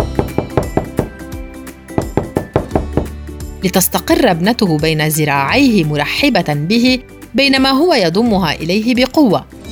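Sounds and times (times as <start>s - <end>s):
knocking on a door: 0.0s - 1.2s, 1.9s - 3.2s
speech: 3.6s - 9.6s.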